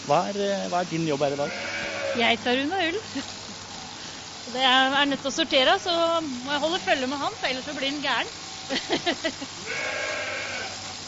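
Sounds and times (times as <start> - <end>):
speech: 0.1 - 3.4, 4.4 - 10.1
faint hum: 0.1 - 11.0
sheep bleating while being shorn: 1.4 - 2.5, 9.6 - 10.9
laughter: 8.7 - 9.6.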